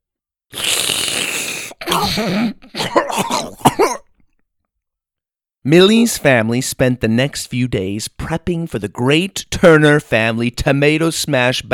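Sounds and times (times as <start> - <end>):
person imitating a long harsh painful snort: 0.5 - 4.0
sharp sneeze: 0.5 - 4.1
choking coughs: 1.7 - 4.3
speech: 2.0 - 4.0, 5.6 - 11.7.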